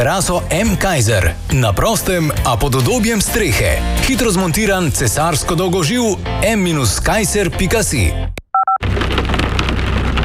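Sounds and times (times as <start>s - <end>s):
speech: 0.0s - 8.4s
electronic beeps: 8.5s - 8.8s
hailstones striking hard surfaces in a hailstorm: 8.8s - 10.2s.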